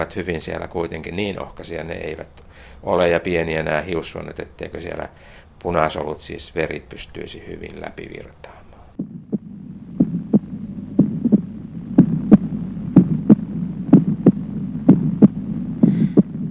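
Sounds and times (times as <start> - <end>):
speech: 0.0 - 8.6
low constant hum: 0.0 - 16.4
steady heartbeat with paired lub-dub thumps: 9.0 - 16.4.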